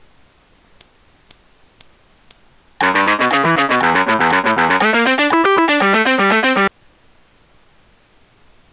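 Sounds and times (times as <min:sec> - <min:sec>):
bluesy Phrygian guitar playing: 0:02.8 - 0:06.7.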